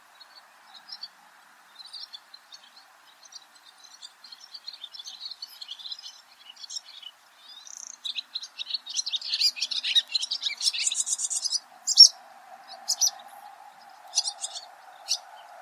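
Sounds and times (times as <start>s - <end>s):
barn swallow twittering: 3.9s - 15.6s.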